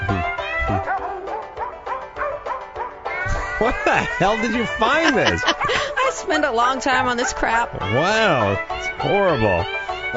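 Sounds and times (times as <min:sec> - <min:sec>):
dogs barking and yipping in a novelty song: 0:00.3 - 0:10.1
laughter: 0:03.3 - 0:08.6
speech: 0:03.6 - 0:10.1.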